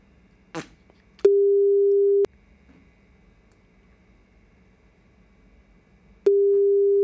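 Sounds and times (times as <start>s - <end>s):
telephone ringing tone on an unanswered call back: 1.3s - 2.3s, 6.3s - 7.0s.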